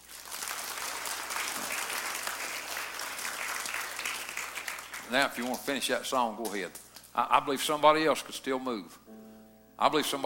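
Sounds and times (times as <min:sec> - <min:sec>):
church audience clapping for people joining for baptism: 0:00.0 - 0:05.8
speech: 0:05.1 - 0:09.1, 0:09.8 - 0:10.2.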